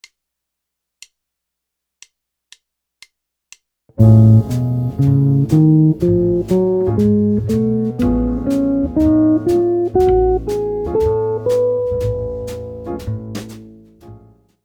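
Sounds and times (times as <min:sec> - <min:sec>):
guitar playing melodic minor modes: 0:04.0 - 0:14.3.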